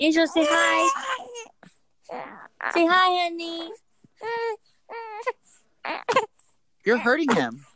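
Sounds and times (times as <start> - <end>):
speech: 0.0 - 1.3, 2.1 - 7.7
baby crying: 0.2 - 3.1, 4.2 - 6.4.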